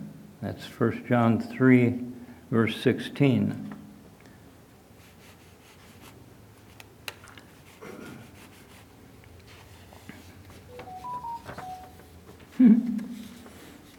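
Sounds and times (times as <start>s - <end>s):
speech: 0.4s - 3.7s
cell phone electronic tones: 10.7s - 12.2s.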